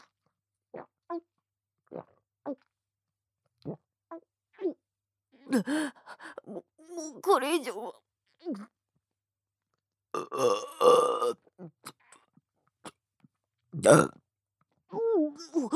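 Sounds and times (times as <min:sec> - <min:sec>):
speech: 0:03.6 - 0:03.8, 0:05.5 - 0:08.7, 0:10.2 - 0:11.4, 0:13.8 - 0:14.2
loud coarse belches: 0:10.2 - 0:11.4, 0:13.8 - 0:14.2.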